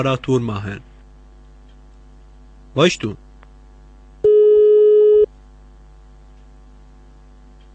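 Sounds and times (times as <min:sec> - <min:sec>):
speech: 0:00.0 - 0:00.9, 0:02.8 - 0:03.2
telephone line tone while placing a call to a repair service: 0:04.2 - 0:05.3.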